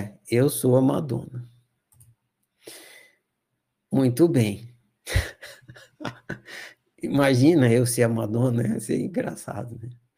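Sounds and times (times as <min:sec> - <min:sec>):
speech: 0:00.3 - 0:01.4, 0:03.9 - 0:05.3, 0:06.0 - 0:10.0
soft quick computer mouse clicks: 0:01.9 - 0:02.5
brief breathy exhale: 0:02.6 - 0:03.2
laughter: 0:05.1 - 0:06.7.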